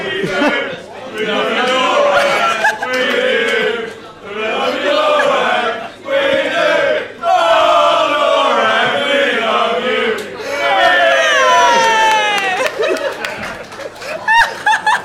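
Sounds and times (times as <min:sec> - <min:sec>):
small group cheering and chanting: 0:00.0 - 0:13.4
laughter: 0:00.2 - 0:00.8, 0:02.1 - 0:03.0, 0:12.2 - 0:15.0
rising whoops: 0:10.4 - 0:13.1.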